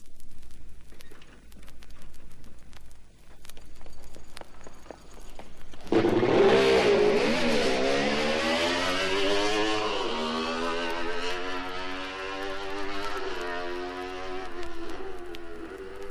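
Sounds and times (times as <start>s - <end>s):
Honda CR93 racing motorcycle engine revving on a track: 5.9s - 16.0s.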